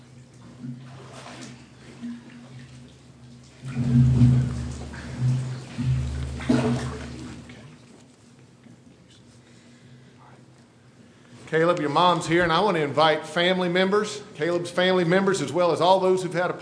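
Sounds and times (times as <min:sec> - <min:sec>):
water sloshing as a person steps down into a baptismal pool: 0:00.0 - 0:08.3
steady low hum: 0:03.2 - 0:07.8
speech: 0:11.5 - 0:16.6.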